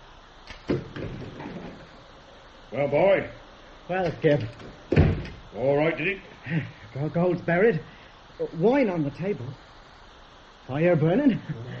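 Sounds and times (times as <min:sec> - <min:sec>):
door thud: 0:00.6 - 0:01.8, 0:04.5 - 0:05.4
speech: 0:02.7 - 0:04.7, 0:05.6 - 0:09.6, 0:10.7 - 0:11.7.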